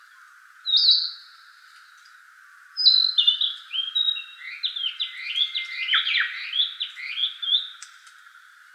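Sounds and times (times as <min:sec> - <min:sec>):
Narcissus flycatcher singing: 0:00.0 - 0:02.2, 0:02.8 - 0:07.8.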